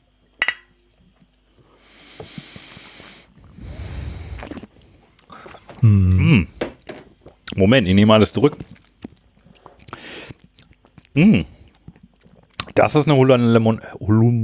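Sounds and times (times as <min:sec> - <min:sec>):
glasses clinking: 0:00.4 - 0:00.8
short vocal sound: 0:05.8 - 0:06.5
speech: 0:05.8 - 0:06.5, 0:07.6 - 0:08.8, 0:11.2 - 0:11.5, 0:12.8 - 0:14.4.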